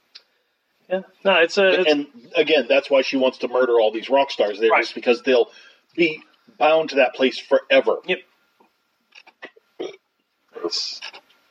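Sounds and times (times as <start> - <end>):
speech: 0.9 - 8.3, 10.6 - 11.2
guttural burp: 9.4 - 10.0
voice-like sounds: 10.6 - 11.2.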